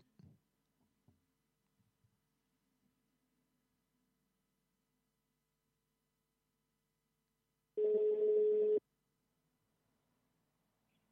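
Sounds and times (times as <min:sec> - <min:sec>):
telephone ringback tone while redialing after a dropped line: 0:07.8 - 0:08.8.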